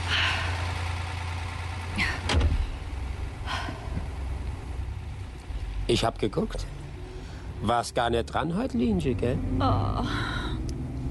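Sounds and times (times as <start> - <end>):
car engine idling: 0.0 - 11.0
car door shutting: 2.0 - 2.8
speech: 5.9 - 6.8, 7.6 - 10.4.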